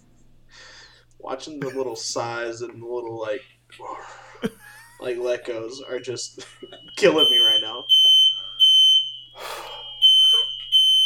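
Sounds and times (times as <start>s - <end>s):
speech: 1.4s - 8.2s
laughter: 3.8s - 5.7s, 6.4s - 7.1s
smoke alarm beeping: 4.8s - 11.0s.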